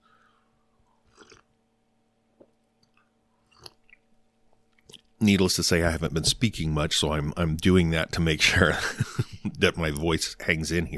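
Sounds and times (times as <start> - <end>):
faint steady hum: 0.0 - 10.9
person slurping and swallowing coffee: 0.8 - 1.6, 2.4 - 4.0
speech: 5.2 - 10.9.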